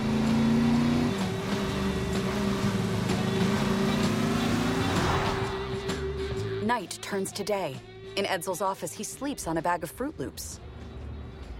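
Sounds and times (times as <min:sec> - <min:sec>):
two heavy truck engines roaring at full throttle racing down a street: 0:00.0 - 0:06.8, 0:09.2 - 0:11.5
speech: 0:06.7 - 0:10.6.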